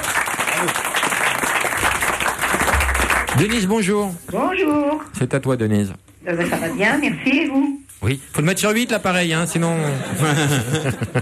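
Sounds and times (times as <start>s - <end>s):
crowd applauding a contest winner: 0.0s - 3.8s
speech: 0.6s - 0.9s, 3.4s - 11.2s
laughter: 9.7s - 11.2s.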